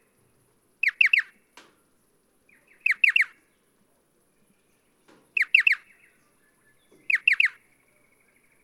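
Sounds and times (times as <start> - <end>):
striated pardalote calling: 0.8 - 1.3, 2.8 - 3.4, 5.4 - 5.9, 7.1 - 7.6.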